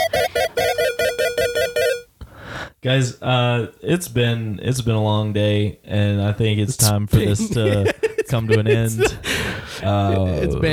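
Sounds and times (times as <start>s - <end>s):
phone ringing with bright electronic ringtone: 0.0s - 2.1s
speech: 2.8s - 10.7s
laughter: 7.2s - 10.7s.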